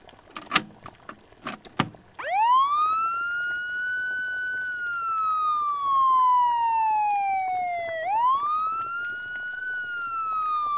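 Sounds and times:
American fire engine siren played from a cassette: 0:02.2 - 0:10.7.

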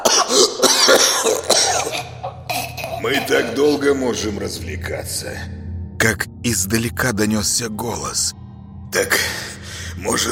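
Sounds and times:
man coughing painfully: 0:00.0 - 0:03.8
speech: 0:03.1 - 0:09.4, 0:10.0 - 0:10.3.

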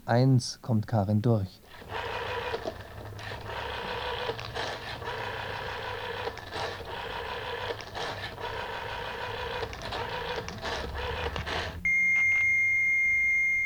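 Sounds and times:
speech: 0:00.1 - 0:02.1
dial-up mailbox modem squealing over a telephone line: 0:01.6 - 0:13.6
steady piercing high modem whistle tone: 0:11.8 - 0:13.6.

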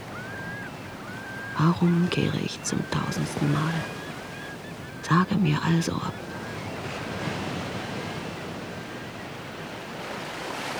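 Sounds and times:
hurricane winds: 0:00.0 - 0:10.7
ocean waves rolling onto old stones in the Gulf of Morbihan: 0:00.0 - 0:10.7
speech: 0:01.6 - 0:04.0, 0:05.1 - 0:06.3.

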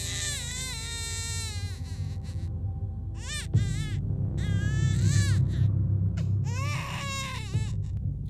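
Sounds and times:
infant crying loudly after being stung by fire ants: 0:00.0 - 0:02.5, 0:03.2 - 0:05.6, 0:06.4 - 0:07.8
low rumble: 0:00.0 - 0:08.2.

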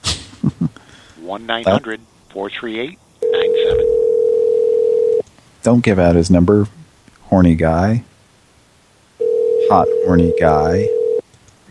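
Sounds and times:
speech: 0:01.3 - 0:03.0, 0:05.6 - 0:08.1, 0:09.7 - 0:11.0
ringing tone on a phone line during a call: 0:03.2 - 0:05.2, 0:09.2 - 0:11.2.

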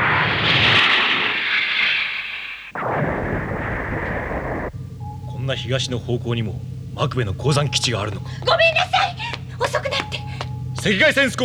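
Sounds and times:
roaring rush of a missile launched horizontally: 0:00.0 - 0:05.1
speech: 0:05.5 - 0:08.8, 0:10.8 - 0:11.4
laughter: 0:05.6 - 0:11.4.

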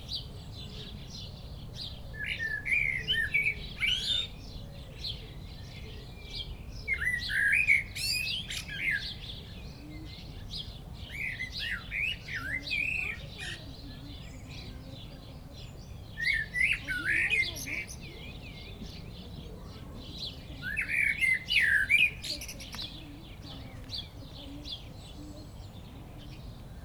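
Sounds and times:
common blackbird singing perched atop a tree in a village: 0:00.0 - 0:26.8.

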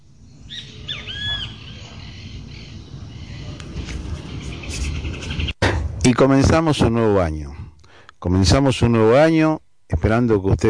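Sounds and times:
birds singing in the morning after a storm: 0:00.0 - 0:05.6
low rumbling noise: 0:00.0 - 0:10.6
speech: 0:06.1 - 0:07.6, 0:08.2 - 0:10.6.

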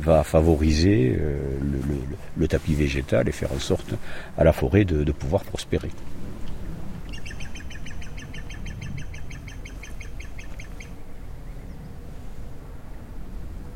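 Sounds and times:
speech: 0:00.0 - 0:06.2
faint steady outdoor hiss: 0:00.0 - 0:13.7
blackbird calling in an autumn mountain forest near Osséja: 0:07.0 - 0:11.9.

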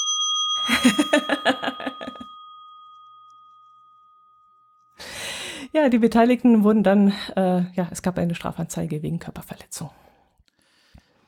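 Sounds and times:
bell ringing: 0:00.0 - 0:05.6
speech: 0:05.8 - 0:10.0.

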